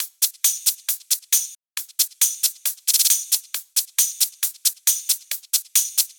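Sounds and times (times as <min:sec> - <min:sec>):
drum hi-hat: 0:00.0 - 0:06.1.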